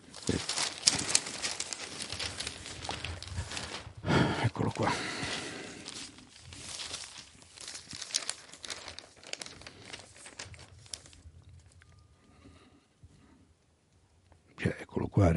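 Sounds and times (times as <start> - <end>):
large newspaper sheets rustling and crinkling as pages are turned: 0.0 - 12.6
speech: 0.3 - 0.6, 4.8 - 5.2, 15.2 - 15.3.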